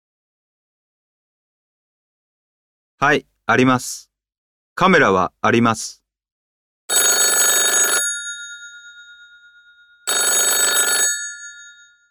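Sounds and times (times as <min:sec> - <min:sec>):
speech: 0:03.0 - 0:04.1, 0:04.8 - 0:06.0
telephone ringing with bright buzzing trill: 0:06.9 - 0:12.0.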